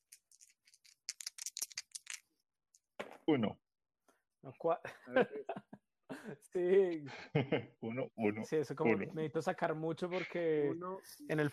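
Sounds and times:
dice clattering across a hard surface: 0.0s - 2.2s
speech: 3.3s - 3.6s, 4.4s - 11.5s
laughter: 4.8s - 7.7s.

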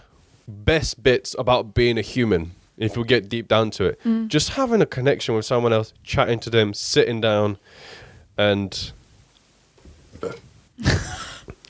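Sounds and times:
speech: 0.5s - 9.0s, 10.2s - 11.2s
deep drawn-out burp: 10.2s - 10.5s.

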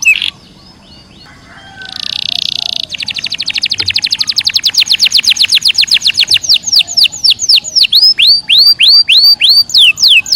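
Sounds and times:
canary singing energetically with trills and whistles: 0.0s - 10.3s.

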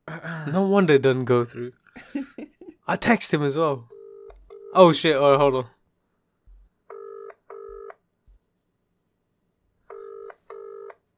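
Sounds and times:
speech: 0.4s - 3.9s, 4.7s - 5.8s
phone call ringing tone in electronic tone bursts: 3.9s - 4.8s, 6.9s - 7.9s, 9.9s - 11.0s.

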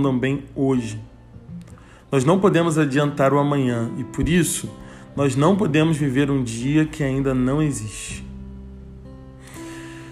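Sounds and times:
speech: 0.0s - 1.1s, 2.1s - 8.3s
long deep breath drawn in: 1.7s - 2.1s, 4.8s - 5.2s, 9.4s - 10.1s.

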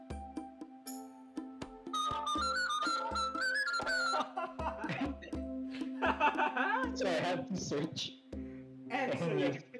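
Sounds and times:
steady rhythmic ticking: 0.0s - 9.7s
bright rising whistle tune: 0.9s - 4.8s
person giggly chuckling: 4.2s - 6.9s
speech: 6.5s - 8.2s, 9.0s - 9.7s.

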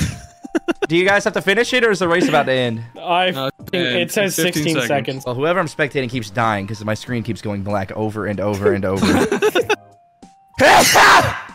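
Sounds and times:
laughter: 0.3s - 1.0s, 8.5s - 9.8s
speech: 0.9s - 9.8s, 10.8s - 11.4s
loud sneeze: 10.6s - 11.5s.

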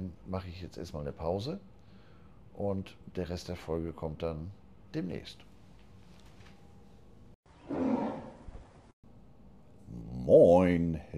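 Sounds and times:
speech: 0.3s - 1.8s, 2.6s - 5.5s, 7.7s - 7.9s, 10.3s - 11.1s
tiger roaring: 7.6s - 8.6s.

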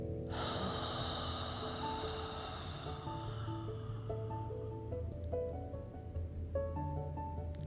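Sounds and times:
gentle sustained music tones with scattered higher notes: 0.0s - 7.6s
slow deep breathing during a guided breathing exercise: 0.3s - 5.1s.

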